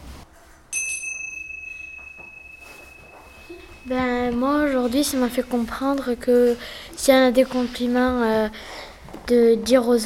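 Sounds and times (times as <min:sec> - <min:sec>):
small bell struck once: 0:00.7 - 0:04.8
speech: 0:03.5 - 0:10.0.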